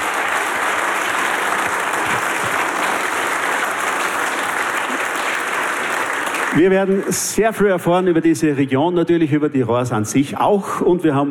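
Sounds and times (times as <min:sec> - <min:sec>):
large audience applause: 0:00.0 - 0:07.9
speech: 0:06.6 - 0:11.2.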